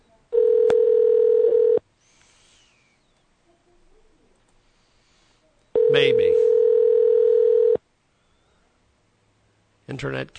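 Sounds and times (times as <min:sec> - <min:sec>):
Skype call dialing tone beep: 0:00.4 - 0:01.8, 0:05.8 - 0:07.8
speech: 0:10.0 - 0:10.3.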